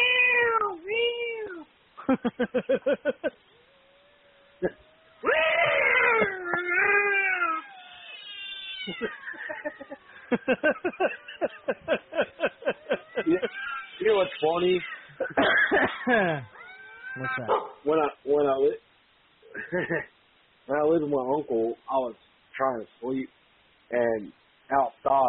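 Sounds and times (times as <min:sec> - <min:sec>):
cat meowing loudly with drawn-out wavering yowls: 0:00.0 - 0:01.7, 0:03.6 - 0:10.1, 0:12.3 - 0:15.2, 0:16.5 - 0:17.5
laughter: 0:02.0 - 0:03.4, 0:08.9 - 0:16.5, 0:19.6 - 0:20.1
speech: 0:02.1 - 0:03.4, 0:04.6 - 0:04.8, 0:10.5 - 0:12.0, 0:14.1 - 0:16.6, 0:17.2 - 0:18.8, 0:19.6 - 0:25.2.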